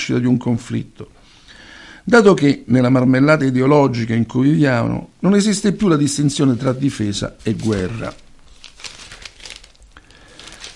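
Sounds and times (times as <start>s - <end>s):
speech: 0.1s - 1.3s, 2.0s - 8.2s
book page turning: 6.4s - 10.7s.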